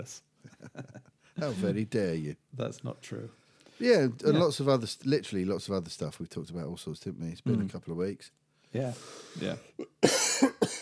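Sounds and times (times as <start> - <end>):
speech: 0.0 - 10.8
person coughing: 9.8 - 10.8.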